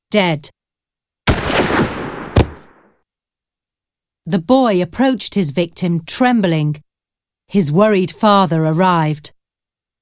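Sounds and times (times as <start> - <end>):
speech: 0.1 - 0.6, 4.3 - 6.8, 7.5 - 9.4
rifle gunshot fired by a boy at a lynx: 1.3 - 2.9
sharp crack: 1.3 - 2.9.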